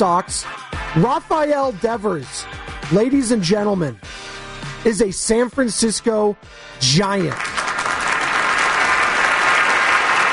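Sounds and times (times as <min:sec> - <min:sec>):
speech: 0:00.0 - 0:04.1, 0:04.8 - 0:07.6
crowd applauding: 0:07.2 - 0:10.3.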